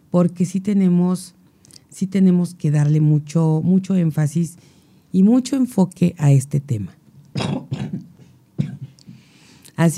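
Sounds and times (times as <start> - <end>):
speech: 0.1 - 1.4, 2.0 - 7.6, 9.8 - 9.9
person clearing throat: 7.4 - 9.0
person coughing: 7.4 - 9.0.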